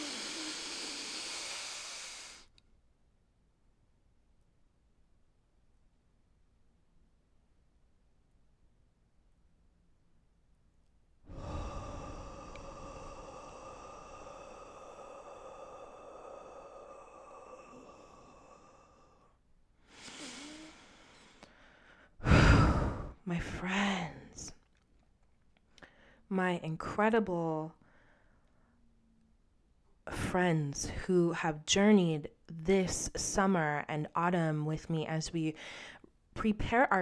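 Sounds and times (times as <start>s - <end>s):
person breathing deeply during a breathing exercise: 0.0s - 2.5s, 11.3s - 24.1s
speech: 23.3s - 23.9s, 26.3s - 27.8s, 30.3s - 37.0s.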